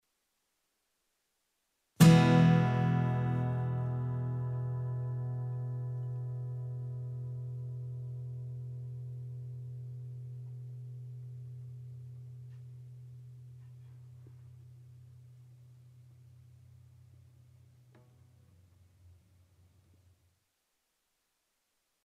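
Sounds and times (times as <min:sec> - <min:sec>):
acoustic guitar: 0:02.0 - 0:18.6.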